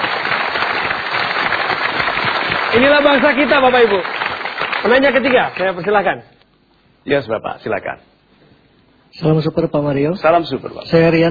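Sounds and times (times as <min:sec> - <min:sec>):
audience applause at a motivational talk: 0:00.0 - 0:06.2
speech: 0:02.8 - 0:04.2, 0:04.8 - 0:06.3, 0:07.0 - 0:08.1, 0:09.1 - 0:11.2.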